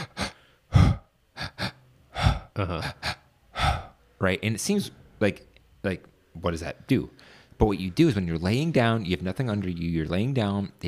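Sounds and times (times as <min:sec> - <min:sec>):
person demonstrating a breathing exercise into stomach and chest: 0:00.0 - 0:04.1, 0:07.2 - 0:07.6
speech: 0:02.6 - 0:03.1, 0:04.2 - 0:10.8.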